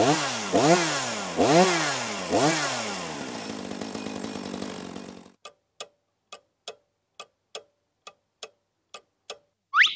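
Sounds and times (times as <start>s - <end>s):
chainsaw of the kind firefighters use to fell trees revving: 0.0s - 5.4s
clock ticking: 5.4s - 9.9s.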